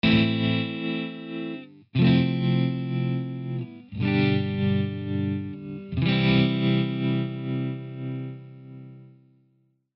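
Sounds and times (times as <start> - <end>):
Stratocaster electric guitar with tap tremolo through Twin amplifier: 0.0 - 9.3.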